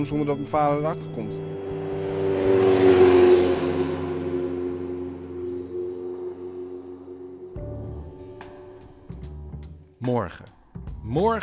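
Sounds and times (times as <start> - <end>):
speech: 0.0 - 1.5, 10.0 - 11.4
parked motorcycle engine revving and idling: 0.9 - 9.4.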